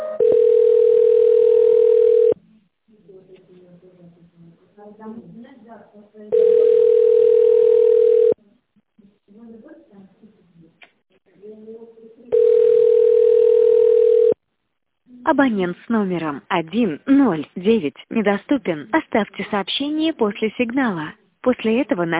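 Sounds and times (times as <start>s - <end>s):
telephone ringback tones while a call is being transferred: 0.2s - 2.3s, 6.3s - 8.4s, 12.3s - 14.4s
speech: 15.3s - 22.1s.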